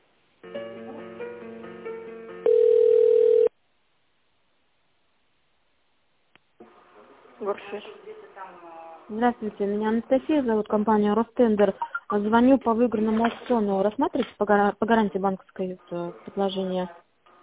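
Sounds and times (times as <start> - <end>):
electronic telephone hold melody during office call transfer: 2.4 - 3.5
speech: 7.4 - 8.1, 9.1 - 17.0.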